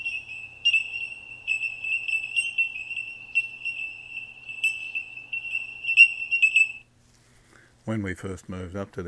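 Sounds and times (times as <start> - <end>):
bellbird singing in the hills: 0.0 - 6.9
speech: 7.9 - 9.0.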